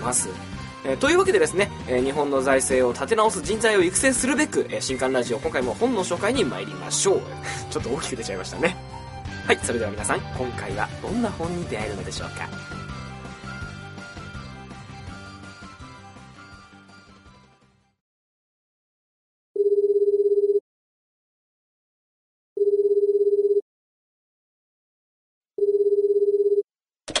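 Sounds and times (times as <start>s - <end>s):
speech: 0.0s - 8.8s, 9.5s - 12.8s
music: 0.0s - 18.0s
company telephone ringing: 19.6s - 20.6s, 22.6s - 23.6s, 25.6s - 26.6s.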